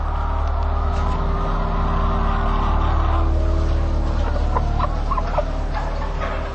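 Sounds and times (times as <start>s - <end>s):
loud constant mechanical drone: 0.0s - 6.5s
live hens clucking in a trash can: 3.0s - 6.5s.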